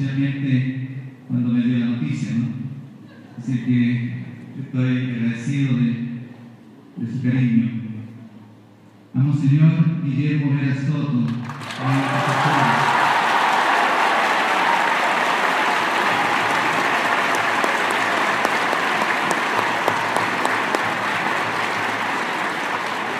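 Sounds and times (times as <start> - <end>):
speech: 0.0 - 2.7, 3.4 - 6.0, 7.0 - 7.8, 9.2 - 13.0
crowd applauding a bishop: 11.4 - 23.1.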